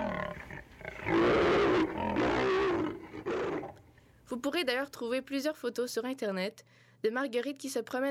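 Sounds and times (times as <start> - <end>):
lioness roaring: 0.0 - 3.8
speech: 4.4 - 8.0.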